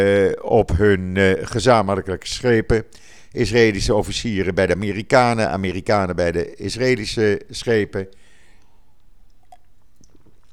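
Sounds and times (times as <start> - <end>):
speech: 0.0 - 8.2
person sipping water: 8.0 - 10.5.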